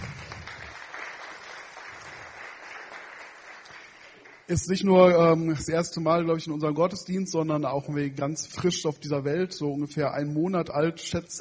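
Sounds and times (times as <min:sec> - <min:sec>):
crowd applauding at a church service: 0:00.0 - 0:04.5
speech: 0:04.5 - 0:11.4.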